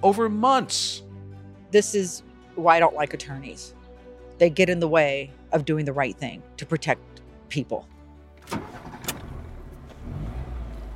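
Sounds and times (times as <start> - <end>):
speech: 0.0 - 1.0, 1.7 - 3.8, 4.4 - 7.9
car engine starting and driving north on the 110 out of downtown Los Angeles: 8.4 - 10.9.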